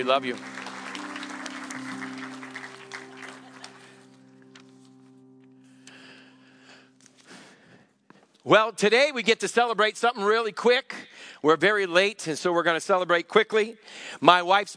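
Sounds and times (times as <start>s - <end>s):
speech: 0.0s - 0.6s, 8.4s - 14.7s
crowd clapping: 0.0s - 4.7s
sustained musical tone: 0.0s - 7.3s.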